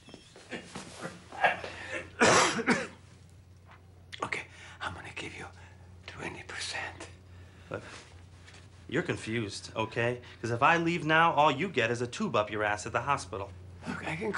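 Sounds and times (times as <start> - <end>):
faint low hum: 0.0 - 14.3
harsh person coughing: 1.4 - 3.0
raspy throat clearing: 1.4 - 3.0
speech: 8.9 - 14.3.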